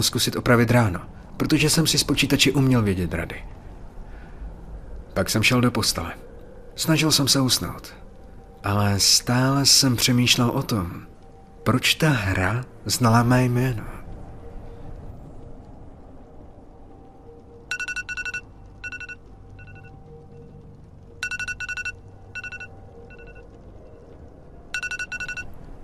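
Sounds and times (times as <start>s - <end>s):
speech: 0.0s - 3.6s, 5.2s - 8.0s, 8.6s - 14.0s
low hum: 0.0s - 25.8s
iPhone ringtone with bright rapid marimba-like tones: 17.7s - 20.0s, 21.2s - 23.4s, 24.7s - 25.6s.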